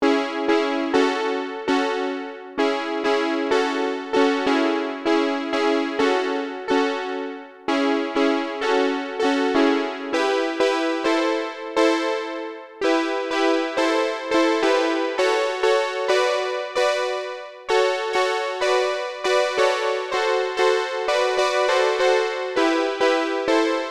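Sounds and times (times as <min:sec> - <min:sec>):
OB-Xa synthesizer: 0:00.0 - 0:23.8.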